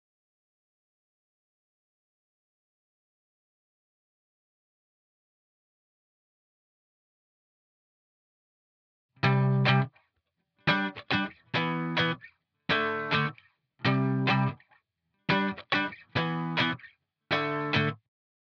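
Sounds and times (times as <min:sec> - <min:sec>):
E minor guitar power chords: 0:09.2 - 0:09.9, 0:10.7 - 0:14.6, 0:15.3 - 0:18.0.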